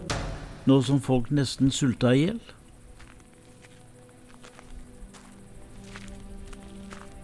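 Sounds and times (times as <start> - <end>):
steady low ambience: 0.0 - 7.2
speech: 0.7 - 2.6
footsteps crunching across a dry riverbed: 1.6 - 7.2.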